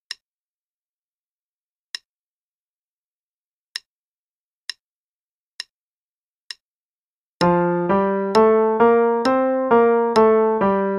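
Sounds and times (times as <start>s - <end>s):
F major musical pattern: 7.4s - 10.9s.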